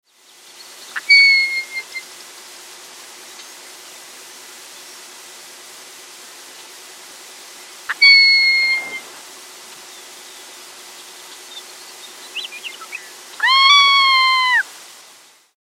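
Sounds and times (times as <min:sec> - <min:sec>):
Ferruginous Hawk calling: 0:01.0 - 0:02.0, 0:07.9 - 0:09.2, 0:12.4 - 0:14.6.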